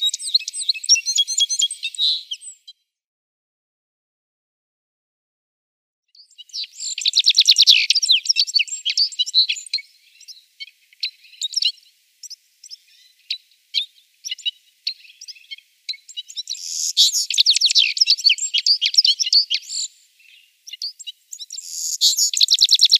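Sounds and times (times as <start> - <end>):
Citril finch song with bright twittering trill and tinkling chirps: 0.0 - 3.0, 6.1 - 22.9.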